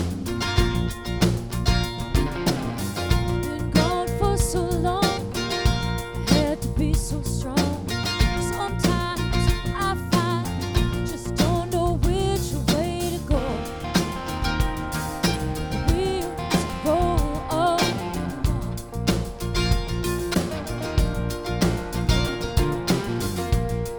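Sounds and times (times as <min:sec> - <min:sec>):
mandolin: 0:00.0 - 0:23.9.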